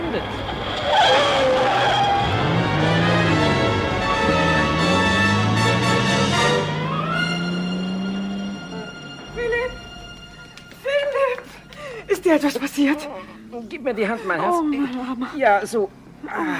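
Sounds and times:
car tire squeal: 0:00.0 - 0:08.9
car engine roaring approaching along a street at high speed: 0:00.0 - 0:10.6
speech: 0:00.2 - 0:00.6, 0:12.3 - 0:16.5.

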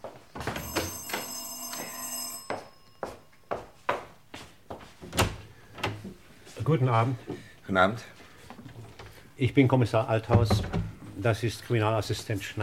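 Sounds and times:
door bell ringing: 0:00.5 - 0:03.8
speech: 0:06.7 - 0:08.2, 0:09.4 - 0:12.6
door being opened with clunks and knocks: 0:10.3 - 0:11.0.

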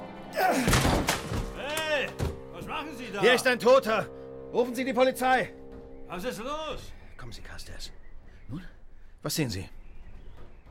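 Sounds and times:
heavy thuds and knocks on a locked door being forced: 0:00.7 - 0:02.6
speech: 0:02.8 - 0:09.8.

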